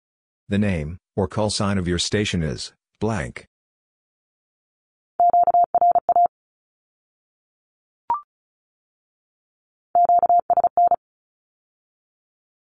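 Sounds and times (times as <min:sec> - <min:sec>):
speech: 0:00.5 - 0:03.5
fast Morse code Q-codes at 35 words per minute in a mid-pitched tone: 0:05.2 - 0:06.3, 0:10.0 - 0:11.0.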